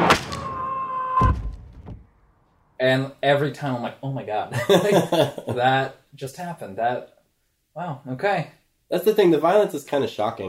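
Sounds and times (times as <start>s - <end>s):
door creaking with a high drawn-out squeal: 0.0s - 2.2s
speech: 2.8s - 7.2s, 7.8s - 10.4s
laughter: 4.5s - 5.7s.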